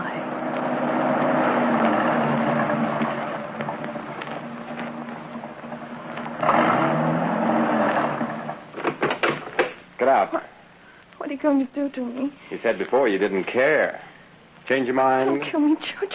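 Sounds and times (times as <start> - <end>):
car engine droning while driving uphill into the Hollywood Hills at dusk: 0.0 - 9.0
sharp mechanical bumps: 0.4 - 9.9
speech: 10.2 - 10.5, 11.3 - 14.1, 14.7 - 16.1.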